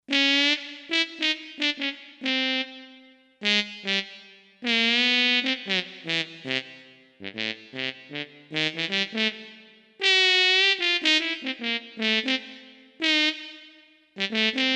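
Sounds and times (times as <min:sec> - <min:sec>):
Roland SC-880 factory patch trombone: 0:00.1 - 0:14.7.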